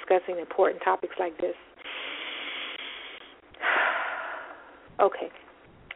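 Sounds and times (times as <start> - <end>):
speech: 0.1 - 1.7, 5.0 - 5.4
slow deep breath inhale and exhale: 1.8 - 4.9.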